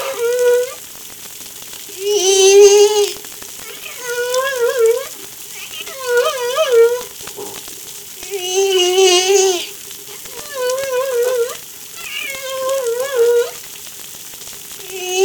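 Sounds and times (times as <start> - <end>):
humpback whale song moans off La Reunion: 0.0 - 0.8, 2.0 - 3.2, 3.9 - 5.2, 8.2 - 11.6, 12.2 - 13.6, 14.9 - 15.2
constant crackling snapping underwater background: 0.0 - 15.2.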